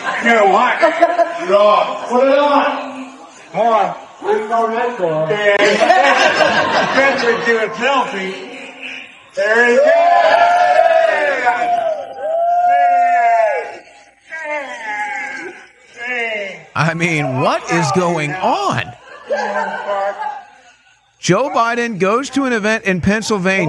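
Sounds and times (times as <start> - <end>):
laughter: 0.0 - 2.3, 5.4 - 9.1, 16.8 - 21.6
speech: 0.2 - 2.9, 3.5 - 8.5, 9.4 - 10.5, 16.8 - 20.3, 21.2 - 23.6
crowd roaring and cheering: 9.4 - 14.0, 16.8 - 20.4.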